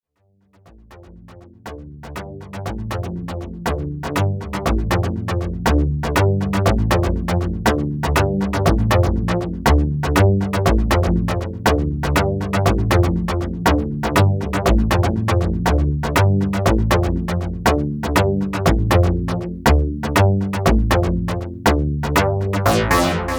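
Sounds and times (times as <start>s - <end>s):
DX7 synthesizer funk bass: 0.8s - 23.3s.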